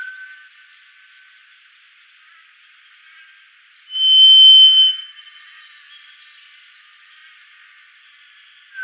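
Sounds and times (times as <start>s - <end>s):
White's thrush whistling: 3.9s - 5.2s.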